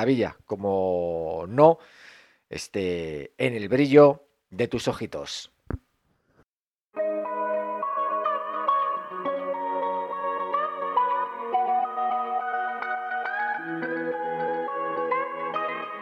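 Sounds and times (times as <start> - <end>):
speech: 0.0 - 5.8
song intro with layered harmonic tones and echo effects: 7.0 - 16.0.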